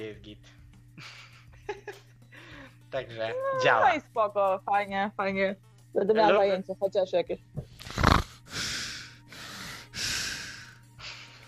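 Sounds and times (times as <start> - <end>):
speech: 0.0 - 1.2, 2.9 - 7.6
heavy breathing in a steady panting rhythm: 7.8 - 11.4
loud breathy snort-like bursts of air: 7.8 - 11.4.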